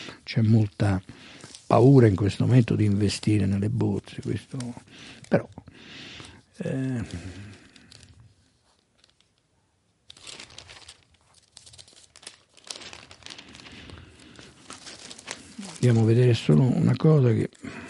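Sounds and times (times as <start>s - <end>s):
newspaper pages rustling and crinkling: 0.0s - 17.6s
speech: 0.3s - 7.6s, 15.8s - 17.8s
short vocal sound: 6.6s - 7.5s.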